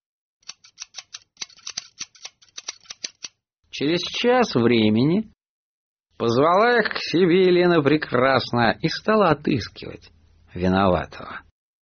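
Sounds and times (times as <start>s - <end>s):
scissors snipping hair: 0.4s - 3.4s
speech: 3.8s - 5.4s, 6.2s - 11.5s.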